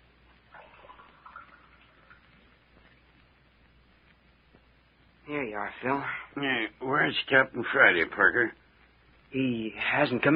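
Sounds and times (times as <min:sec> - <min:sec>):
soft hiss: 0:00.0 - 0:10.3
water poured into a glass: 0:00.5 - 0:02.4
speech: 0:05.3 - 0:08.6, 0:09.3 - 0:10.3.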